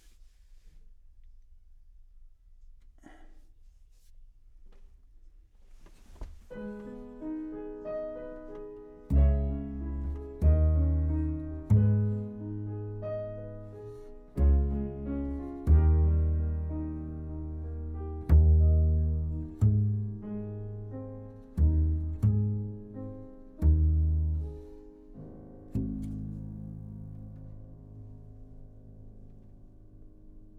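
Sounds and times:
contrabass: 6.5 - 30.2.

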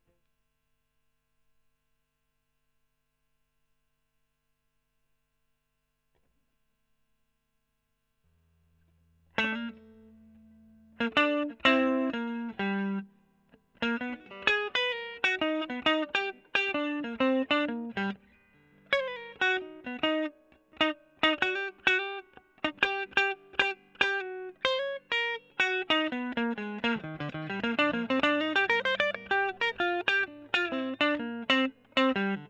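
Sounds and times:
electric guitar solo through Gefell microphone: 9.4 - 32.4.

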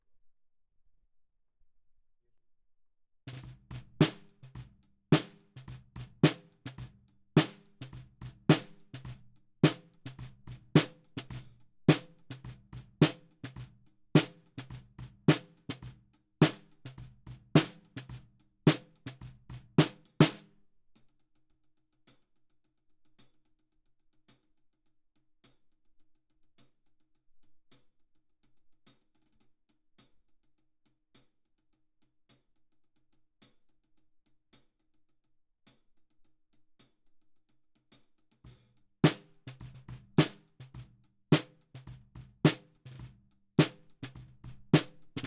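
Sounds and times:
snare drum bottom: 3.3 - 20.5, 38.5 - 45.2.

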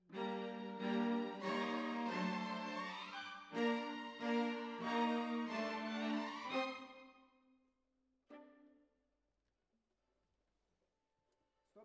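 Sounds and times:
cellos: 0.0 - 7.1.

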